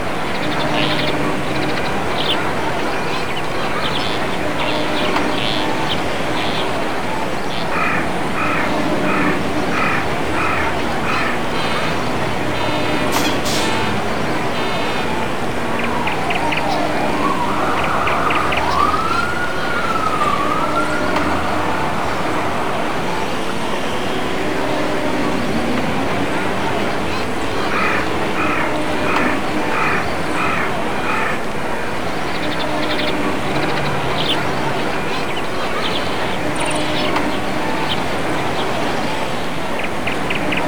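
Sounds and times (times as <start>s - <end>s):
city ambience: 0.0s - 40.6s.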